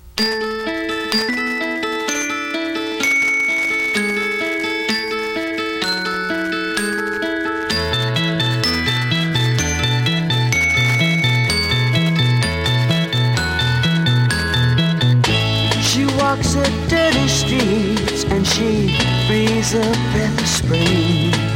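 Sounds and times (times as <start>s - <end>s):
chiming bell-like tones in a pop song intro: 0.2s - 16.6s
bouncing bass line: 3.8s - 21.5s.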